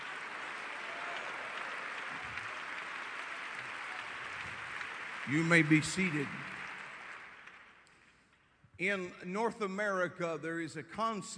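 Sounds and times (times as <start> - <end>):
large crowd applauding in a reverberant hall: 0.0 - 8.2
speech: 5.3 - 6.5, 8.8 - 11.3.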